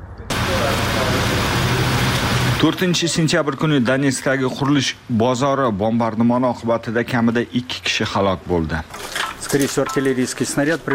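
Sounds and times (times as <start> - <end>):
road traffic roar in a traffic jam in Kyiv: 0.3 - 2.6
speech: 2.6 - 10.9.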